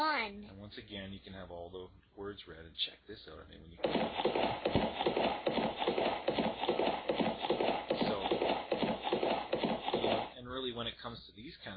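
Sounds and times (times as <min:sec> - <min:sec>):
speech: 0:00.0 - 0:06.6, 0:10.7 - 0:11.7
horse hooves trotting clip-clop: 0:03.9 - 0:10.3.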